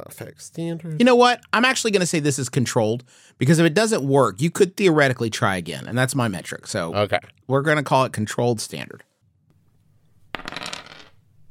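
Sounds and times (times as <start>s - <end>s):
speech: 0.0s - 9.1s
dice clattering onto a hard tabletop: 10.2s - 11.3s.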